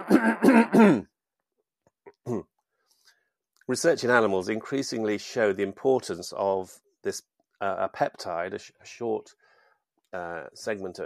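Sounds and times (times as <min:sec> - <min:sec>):
person coughing loud and harsh: 0:00.0 - 0:01.1, 0:02.3 - 0:02.5
soft throat clearing: 0:00.0 - 0:01.1, 0:02.1 - 0:02.6
speech: 0:00.1 - 0:01.1, 0:02.3 - 0:02.5, 0:03.7 - 0:09.4, 0:10.1 - 0:11.0.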